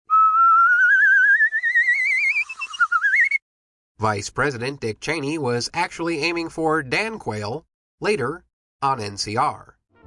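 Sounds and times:
slide whistle gliding upward: 0:00.1 - 0:03.4
speech: 0:04.0 - 0:09.8.

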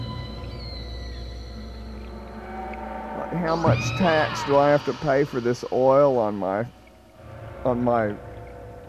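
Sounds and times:
underwater whale calls with gliding moans and high whistles: 0:00.0 - 0:06.8
steady low underwater rumble: 0:01.1 - 0:08.8
speech: 0:03.3 - 0:06.8, 0:07.6 - 0:08.3.

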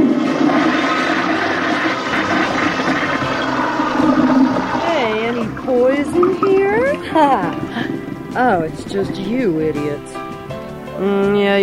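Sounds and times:
toilet flushing: 0:00.0 - 0:10.8
speech: 0:07.2 - 0:07.6, 0:08.4 - 0:10.2, 0:11.0 - 0:11.6.

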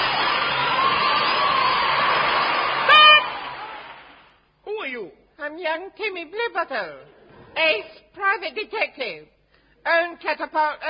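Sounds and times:
recorded audience applause played from a record: 0:00.0 - 0:04.4
speech: 0:05.6 - 0:10.8.

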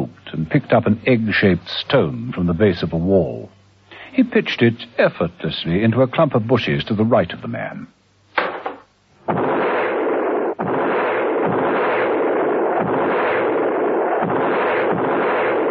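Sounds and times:
speech: 0:00.0 - 0:08.0
short sharp crack: 0:08.3 - 0:15.6
rapid automatic gunfire echoing: 0:08.4 - 0:15.6.

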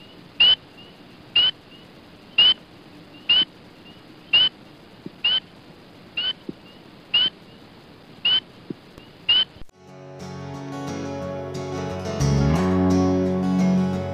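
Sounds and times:
spring peeper frog calling: 0:00.0 - 0:09.7
faint hiss: 0:00.0 - 0:14.1.

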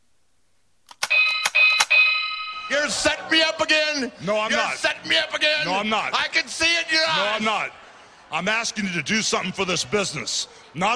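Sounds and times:
bell ringing loudly with bright metallic tones: 0:01.0 - 0:03.0
speech: 0:02.7 - 0:10.9.

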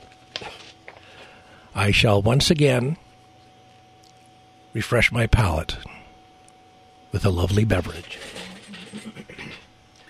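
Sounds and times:
speech: 0:01.8 - 0:03.0, 0:04.8 - 0:05.9, 0:07.1 - 0:09.4
man clearing his throat: 0:08.8 - 0:09.7.

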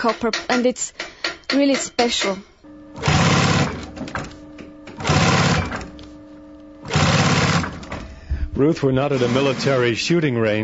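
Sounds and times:
speech: 0:00.0 - 0:03.3, 0:08.6 - 0:10.6
heavy sewing machine stitching belts: 0:03.0 - 0:04.4, 0:05.0 - 0:06.0, 0:06.8 - 0:08.1, 0:09.0 - 0:10.1.

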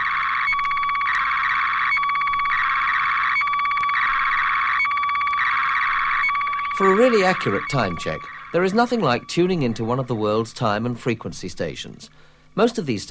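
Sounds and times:
short regular blips in slow scan television signal: 0:00.0 - 0:10.3
shortwave slow scan television signal warbling tone: 0:00.0 - 0:10.8
speech: 0:06.9 - 0:13.0.

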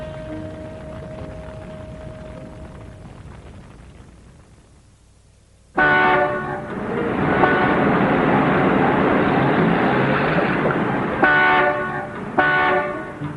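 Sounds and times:
dense traffic rumble: 0:00.0 - 0:13.3
sharp loud car horn blasts in traffic: 0:05.8 - 0:06.7, 0:07.4 - 0:07.9, 0:11.2 - 0:13.3.

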